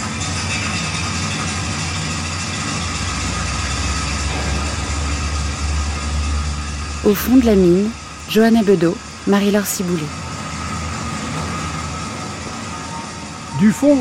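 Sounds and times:
mine cage lift descending fast into the shaft: 0:00.0 - 0:13.9
speech: 0:07.0 - 0:10.2, 0:13.6 - 0:13.9.

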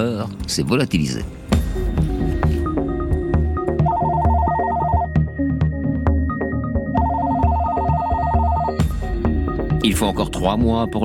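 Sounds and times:
speech: 0:00.0 - 0:01.6, 0:09.9 - 0:11.0
low music: 0:00.0 - 0:11.0
telephone ringing with rapid trilling: 0:03.8 - 0:05.1, 0:07.0 - 0:08.8.

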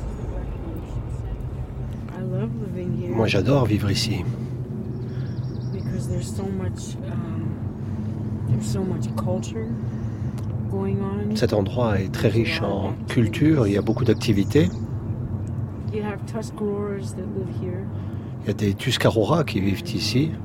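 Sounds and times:
road noise inside a car on a small country road: 0:00.0 - 0:20.4
steady low car engine rumble on a small country road: 0:00.0 - 0:20.4
speech: 0:02.4 - 0:04.5, 0:06.1 - 0:07.4, 0:08.5 - 0:10.0, 0:10.7 - 0:14.8, 0:15.9 - 0:20.4.

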